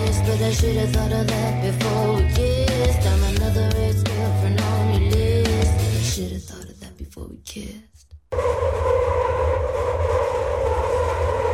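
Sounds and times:
speech: 0.3 - 5.2, 6.2 - 9.3
train rumble with droning hum: 8.3 - 11.5.

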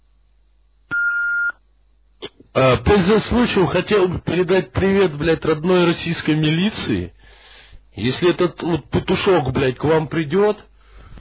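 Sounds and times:
home answering machine message beep: 0.9 - 1.6
speech: 2.6 - 7.4, 8.0 - 10.7.

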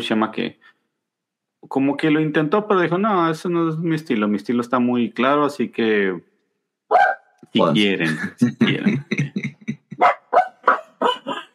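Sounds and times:
speech: 0.0 - 0.7, 1.6 - 6.3, 6.9 - 9.4
several female dogs barking restless before being let out: 6.9 - 7.2, 10.0 - 11.5
laughter: 7.6 - 10.0.

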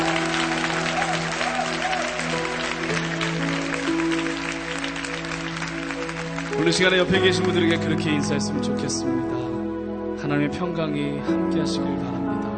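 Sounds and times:
church congregation clapping during a worship service: 0.0 - 8.3
speech: 6.6 - 9.5, 10.2 - 12.5.

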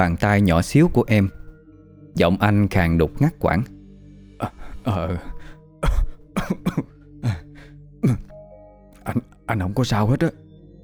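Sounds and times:
speech: 0.0 - 1.4, 2.2 - 3.8, 4.4 - 7.4, 9.1 - 10.4
man coughing hard while clutching his chest: 4.4 - 8.4, 9.1 - 9.3.

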